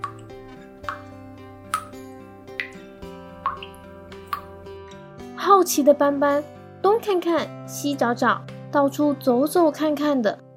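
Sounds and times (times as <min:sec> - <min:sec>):
water dripping from a kitchen tap not fully turned off: 0:00.0 - 0:04.9
faint sustained musical backdrop: 0:00.0 - 0:10.5
speech: 0:05.4 - 0:10.4.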